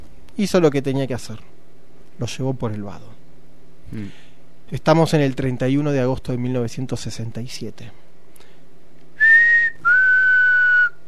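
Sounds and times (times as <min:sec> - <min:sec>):
speech: 0:00.4 - 0:01.5, 0:02.2 - 0:03.2, 0:03.9 - 0:08.0
sustained human whistles at a river ford: 0:09.2 - 0:11.0.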